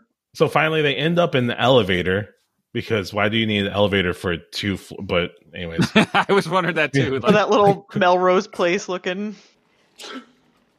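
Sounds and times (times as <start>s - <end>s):
speech: 0.4s - 10.3s
laughter: 5.6s - 8.4s
single sharp sneeze: 10.0s - 10.4s.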